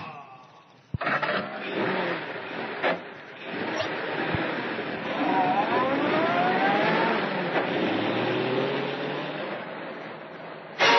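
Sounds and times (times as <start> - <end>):
car engine roaring and revving as the car accelerates away: 0.9 - 10.8.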